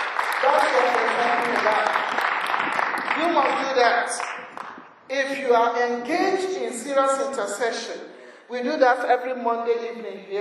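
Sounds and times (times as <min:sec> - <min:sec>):
crowd clapping: 0:00.0 - 0:04.8
speech: 0:05.1 - 0:10.3.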